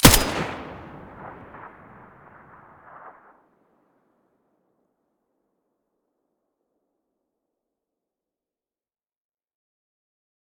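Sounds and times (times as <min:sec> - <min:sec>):
M4A1 rifle muzzle gunshot: 0:00.0 - 0:03.3.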